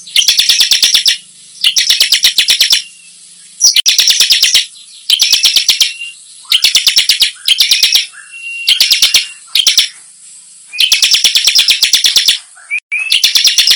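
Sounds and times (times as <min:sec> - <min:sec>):
Bar-winged prinia singing: 0:00.0 - 0:13.7.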